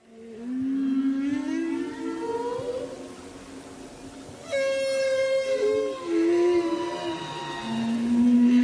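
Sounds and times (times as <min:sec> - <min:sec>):
humpback whale song near the Silver Bank off the Dominican Republic: 0:00.0 - 0:08.6
steady underwater hiss: 0:00.0 - 0:08.6.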